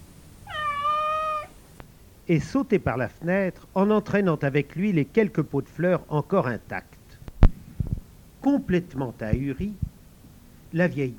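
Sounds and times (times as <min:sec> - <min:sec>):
cat meowing: 0:00.4 - 0:01.6
speech: 0:02.3 - 0:07.0, 0:08.4 - 0:09.8, 0:10.7 - 0:11.1.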